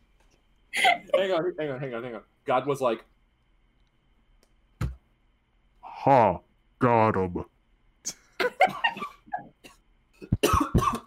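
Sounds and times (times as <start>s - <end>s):
speech: 1.2s - 3.1s, 6.0s - 8.2s
harsh loud coughing: 9.6s - 11.0s.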